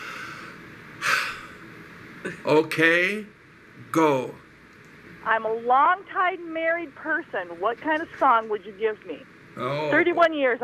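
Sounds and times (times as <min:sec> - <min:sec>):
deep breath: 0:00.0 - 0:01.6
low steady hiss: 0:00.0 - 0:10.6
speech: 0:02.2 - 0:04.4, 0:05.2 - 0:10.6.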